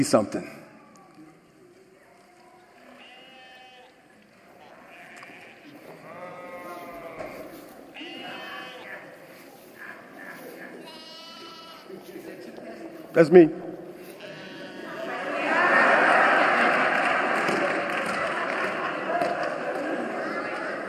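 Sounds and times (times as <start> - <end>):
speech: 0.0 - 0.6, 13.2 - 13.6
sheep bleating: 2.8 - 4.0, 4.6 - 9.1, 10.8 - 12.0, 14.0 - 15.1
laughter: 14.6 - 20.8.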